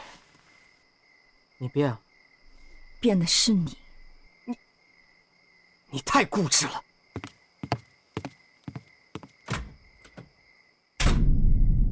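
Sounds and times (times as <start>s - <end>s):
speech: 1.6s - 2.0s, 3.0s - 3.8s, 5.9s - 7.3s
door shut with a heavy thud: 9.4s - 10.4s, 11.0s - 11.7s.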